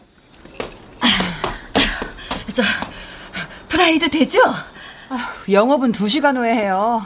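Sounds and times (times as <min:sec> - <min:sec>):
keys jangling as a woman pulls them from her bag: 0:00.0 - 0:03.2
speech: 0:02.6 - 0:02.9, 0:03.8 - 0:07.0.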